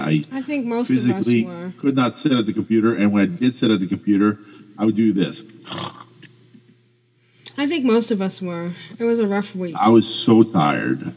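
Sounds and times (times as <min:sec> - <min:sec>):
speech: 0:00.0 - 0:05.9, 0:07.8 - 0:11.1
person imitating snoring: 0:05.7 - 0:06.1.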